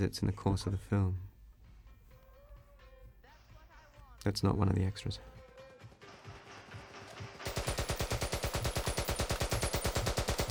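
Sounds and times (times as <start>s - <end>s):
speech: 0.0s - 1.3s, 4.2s - 5.4s
film machine-gun-style gunfire effect with bullets turning into cash registers: 7.4s - 10.4s.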